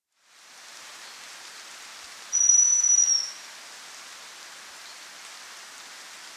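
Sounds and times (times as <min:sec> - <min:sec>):
faint constant hiss: 0:00.0 - 0:06.3
chestnut-belted chat-tyrant high whistle call: 0:02.3 - 0:03.4.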